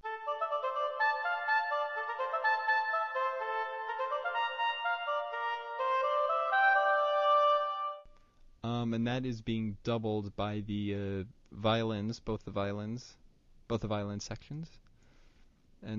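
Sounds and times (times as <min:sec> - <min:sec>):
staccato oboe melody: 0:00.0 - 0:08.1
speech: 0:08.8 - 0:14.9.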